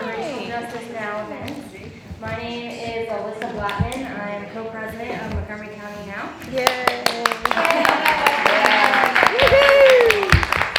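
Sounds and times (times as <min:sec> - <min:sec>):
voices calling and chattering: 0:00.0 - 0:09.0
speech: 0:00.6 - 0:08.1
light applause from a small group at a panel discussion event: 0:06.6 - 0:10.7.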